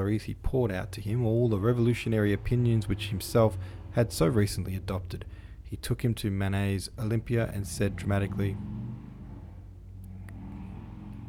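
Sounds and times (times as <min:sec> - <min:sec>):
speech: 0:00.0 - 0:09.0
loud car or motorbike engine passing outside: 0:01.0 - 0:11.2
faint clicks: 0:09.9 - 0:11.2.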